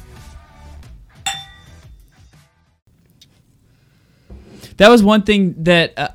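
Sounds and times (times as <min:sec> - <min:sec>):
glasses clinking in a toast: 0:01.3 - 0:01.8
speech: 0:04.8 - 0:06.1.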